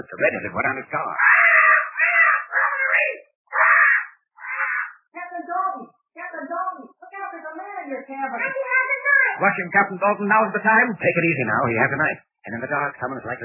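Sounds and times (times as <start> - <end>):
speech: 0.0 - 1.4, 8.1 - 13.4
bird squawking with raspy screeches and nasal cries: 1.2 - 5.1.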